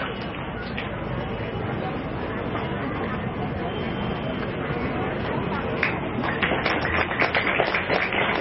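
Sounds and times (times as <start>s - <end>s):
faint chatter: 0.0s - 8.3s
large crowd applause: 4.2s - 8.3s.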